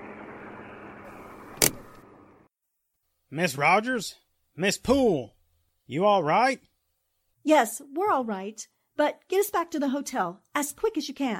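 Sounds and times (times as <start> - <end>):
car engine: 0.0 - 2.4
road rumble: 0.0 - 2.4
sharp click or thump: 1.6 - 2.0
speech: 3.3 - 6.7, 7.4 - 11.3.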